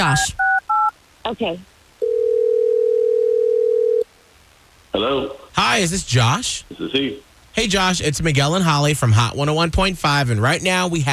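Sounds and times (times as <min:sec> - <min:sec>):
speech: 0:00.0 - 0:00.4, 0:01.2 - 0:01.7, 0:05.0 - 0:11.1
telephone dial tone: 0:02.0 - 0:04.0.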